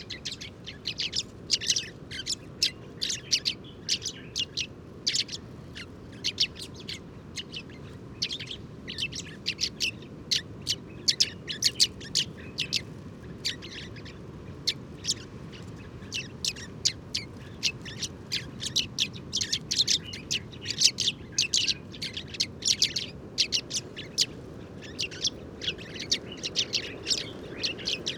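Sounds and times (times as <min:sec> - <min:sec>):
Sudan golden sparrow chirps in Tagant Mauritania: 0:00.0 - 0:28.1.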